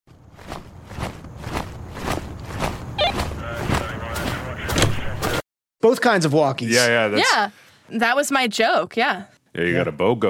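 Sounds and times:
footsteps walking: 0:00.1 - 0:05.4
speech: 0:05.8 - 0:10.2.

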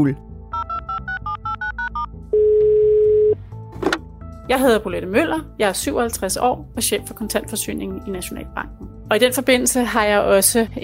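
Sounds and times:
speech: 0:00.0 - 0:00.3, 0:04.5 - 0:10.8
long steady telephone ringing tone: 0:00.5 - 0:03.4
short two-tone telephone keypad beeps: 0:00.6 - 0:03.4.

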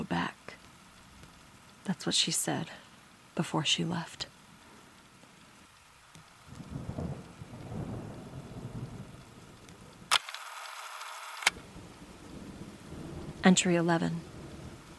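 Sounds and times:
rain pouring during a thunderstorm: 0:00.0 - 0:14.9
speech: 0:01.9 - 0:02.8, 0:03.4 - 0:04.3, 0:13.5 - 0:14.3
thunder rumbling: 0:06.4 - 0:10.1, 0:11.5 - 0:14.9
sharp clicks: 0:10.1 - 0:11.6.

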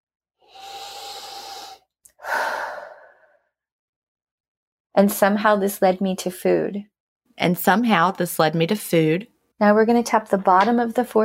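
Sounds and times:
deep breath in and out during a guided tapping exercise: 0:00.4 - 0:03.6
speech: 0:05.0 - 0:11.2.

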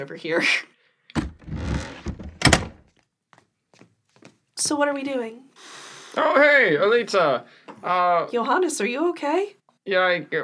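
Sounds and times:
speech: 0:00.0 - 0:01.7, 0:04.6 - 0:10.4
solid thunk of a door latch: 0:01.2 - 0:02.8.

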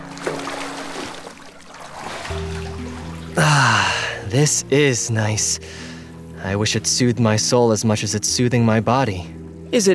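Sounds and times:
water splashing as a person steps in and wades: 0:00.0 - 0:04.1
water trickling: 0:00.0 - 0:05.9
speech: 0:03.4 - 0:09.9.

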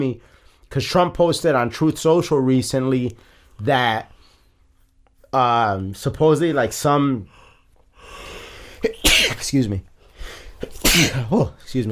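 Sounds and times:
speech: 0:00.0 - 0:04.1, 0:05.3 - 0:07.4, 0:08.8 - 0:09.9, 0:10.6 - 0:11.9
person sneezing: 0:08.8 - 0:09.4, 0:10.6 - 0:11.4.

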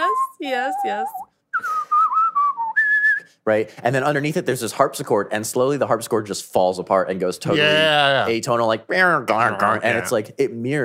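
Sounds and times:
funky whistled tune from video game menu music: 0:00.0 - 0:03.4
speech: 0:00.4 - 0:01.3, 0:03.4 - 0:10.8.

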